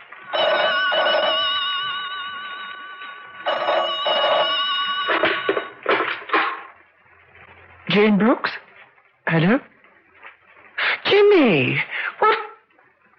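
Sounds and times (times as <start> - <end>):
telephone ringing: 0.1 - 6.3
speech: 8.0 - 8.6, 9.3 - 9.7, 11.3 - 12.4.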